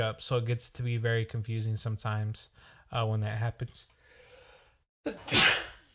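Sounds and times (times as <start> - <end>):
speech: 0.0 - 4.0, 5.0 - 5.7
person sneezing: 5.1 - 5.9.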